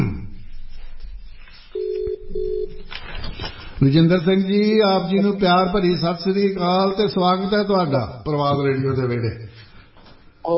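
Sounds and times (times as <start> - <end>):
telephone dialing beeps as a call is placed: 1.8 - 2.8
speech: 3.8 - 9.5.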